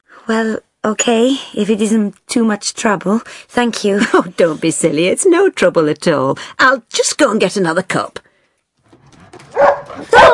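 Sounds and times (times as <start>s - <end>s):
speech: 0.3s - 8.2s
dog giving whining yelps at home: 9.5s - 10.3s.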